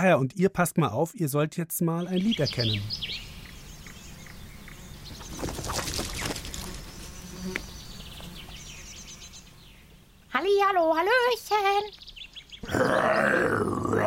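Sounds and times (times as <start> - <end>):
speech: 0.0 - 3.3, 10.4 - 12.0, 12.6 - 14.0
small bird chirping: 1.9 - 12.7
rustling buzzing noise: 3.3 - 11.5.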